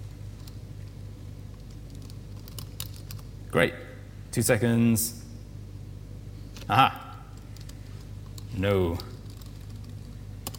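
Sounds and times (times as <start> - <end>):
computer keyboard clicks: 1.5 - 3.3, 7.0 - 10.5
speech: 3.5 - 5.2, 6.7 - 7.0, 8.6 - 9.1.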